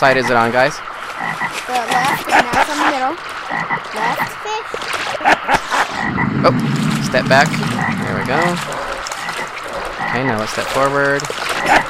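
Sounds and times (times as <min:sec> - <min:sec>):
frogs croaking in chorus at a fishing spot: 0:00.0 - 0:04.5, 0:07.8 - 0:10.5, 0:11.2 - 0:11.8
speech: 0:00.0 - 0:09.0, 0:10.1 - 0:11.8.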